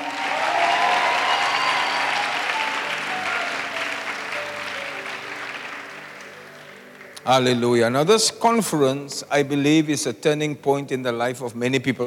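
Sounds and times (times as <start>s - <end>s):
audience clapping at a church conference: 0.0s - 7.5s
speech: 7.3s - 12.0s.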